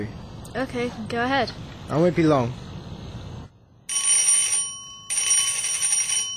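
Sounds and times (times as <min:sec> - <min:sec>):
speech: 0:00.0 - 0:02.6
mobile phone ringing: 0:03.9 - 0:06.3.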